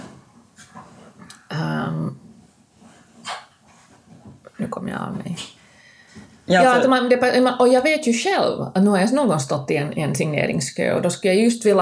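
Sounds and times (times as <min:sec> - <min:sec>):
softer dog noises: 0:02.8 - 0:04.3
speech: 0:04.6 - 0:05.6, 0:06.5 - 0:11.8.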